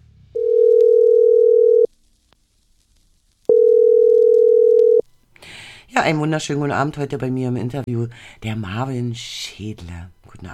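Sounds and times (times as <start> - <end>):
telephone ringing tone while placing a call: 0.4 - 1.9, 3.5 - 5.0
speech: 6.0 - 10.5.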